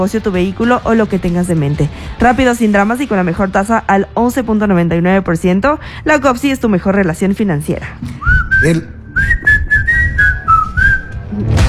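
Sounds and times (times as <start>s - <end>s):
speech: 0.0s - 9.5s
shrill whistle blowing like a referee's whistle: 8.2s - 11.3s.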